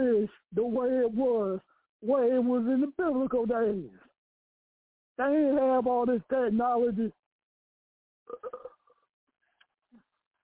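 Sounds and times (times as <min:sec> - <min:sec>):
speech: 0:00.1 - 0:04.0, 0:05.2 - 0:07.2, 0:08.3 - 0:08.7
faint mouth noises: 0:08.3 - 0:09.0
loud burp with rough pulsing rumble: 0:08.3 - 0:09.0.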